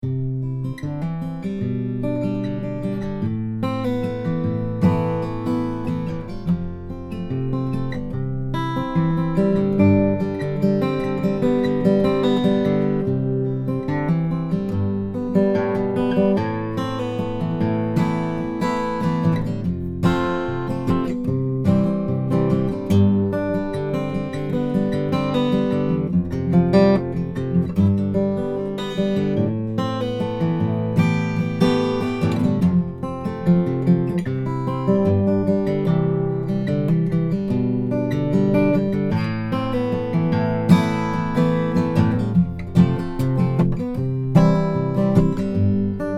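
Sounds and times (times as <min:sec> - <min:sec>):
fingerpicked Santa Cruz OM acoustic guitar: 0:00.0 - 0:46.1.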